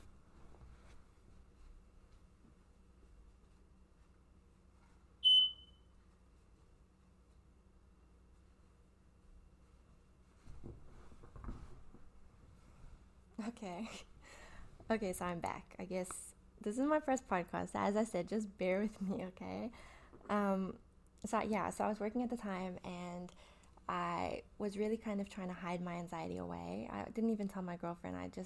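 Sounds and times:
rustling: 0.0 - 5.2, 5.9 - 13.2
high-pitched fire alarm beep: 5.2 - 5.8
speech: 13.5 - 28.4.

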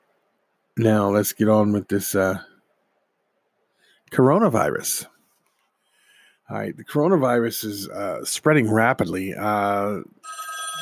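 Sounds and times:
speech: 0.8 - 2.5, 4.1 - 5.1, 6.5 - 10.8
telephone ringing: 10.2 - 10.8.

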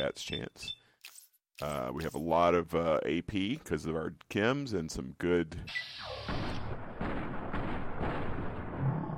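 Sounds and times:
speech: 0.0 - 0.8, 1.6 - 6.4
video game gunshots fired at a robot's head: 5.8 - 9.1.

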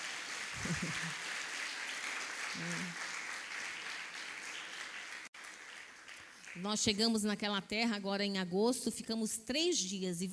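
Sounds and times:
crowd applauding: 0.0 - 6.6
laughter: 0.6 - 1.1
speech: 0.6 - 1.3, 2.5 - 3.0, 6.6 - 10.3.

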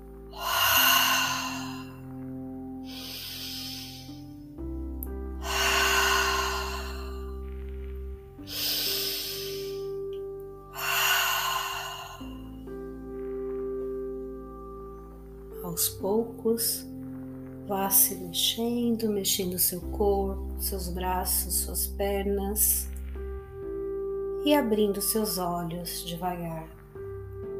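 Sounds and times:
soft steady musical drone: 0.0 - 27.5
deep breaths in through the nose and out through the mouth during guided relaxation: 0.1 - 15.6
speech: 15.8 - 16.9, 17.7 - 22.9, 24.4 - 26.8.

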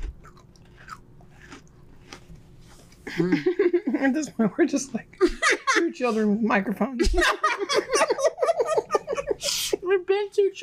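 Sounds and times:
crunching and chewing a cookie: 0.0 - 3.1
laughter: 3.1 - 4.1, 5.2 - 6.2, 7.0 - 9.8
speech: 3.2 - 8.3, 9.4 - 10.6.

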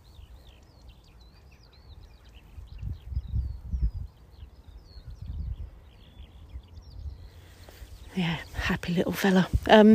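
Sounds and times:
skylark singing overhead: 0.0 - 9.9
low rumble of wind: 1.9 - 9.9
speech: 8.2 - 9.9.

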